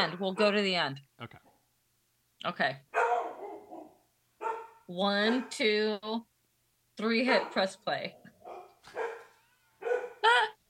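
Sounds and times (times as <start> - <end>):
dog barking: 0.0 - 0.6, 2.9 - 5.6, 7.2 - 7.7, 8.4 - 10.2
speech: 0.0 - 1.5, 2.4 - 3.0, 4.9 - 6.3, 7.0 - 8.2.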